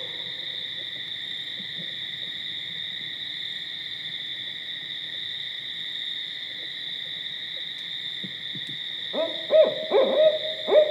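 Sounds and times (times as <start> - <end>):
barred owl hooting: 9.2 - 10.9.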